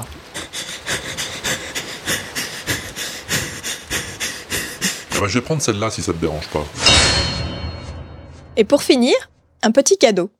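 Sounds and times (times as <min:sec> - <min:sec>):
person faking breathless panting: 0:00.2 - 0:05.2
speech: 0:05.2 - 0:07.2, 0:08.6 - 0:10.3.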